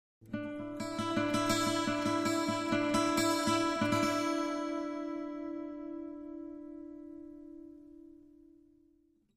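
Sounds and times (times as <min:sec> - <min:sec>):
acoustic guitar high tone: 0:00.2 - 0:09.0.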